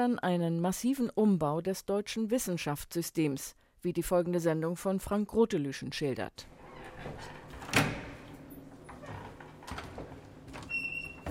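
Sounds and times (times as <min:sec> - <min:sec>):
speech: 0:00.0 - 0:07.9
door being opened with a sharp knock-like clunk: 0:06.8 - 0:11.2.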